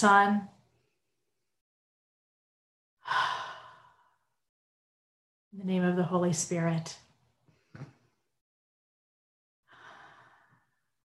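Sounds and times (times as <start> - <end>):
speech: 0.0 - 0.5, 5.6 - 7.0
deep breath in during a centering breath prayer: 3.0 - 4.3, 9.7 - 10.9.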